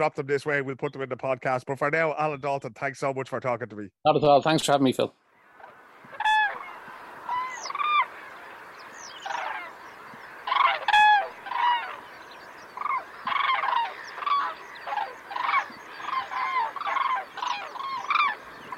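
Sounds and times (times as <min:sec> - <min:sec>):
speech: 0:00.0 - 0:05.2
common cranes trumpeting and bugling: 0:05.4 - 0:18.7.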